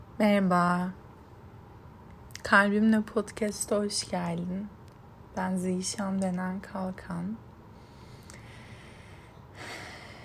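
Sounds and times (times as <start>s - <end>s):
speech: 0.2s - 1.0s, 2.5s - 4.8s, 5.4s - 7.5s
long airy breath drawn in: 7.8s - 10.2s.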